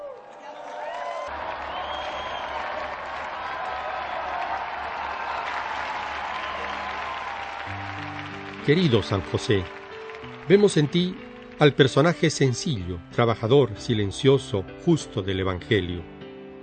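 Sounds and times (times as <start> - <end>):
large audience applause: 0.0 - 12.8
speech: 8.7 - 9.8, 10.5 - 16.1.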